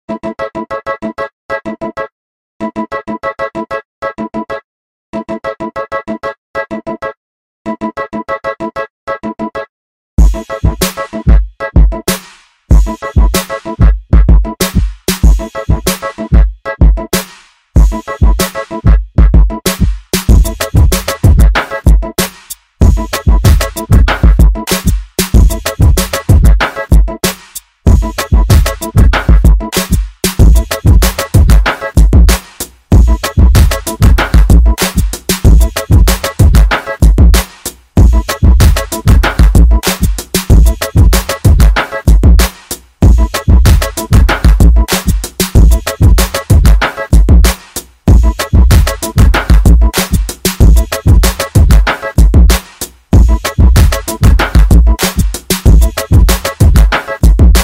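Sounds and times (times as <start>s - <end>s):
flip phone ringtone remix music: 0.1s - 57.6s.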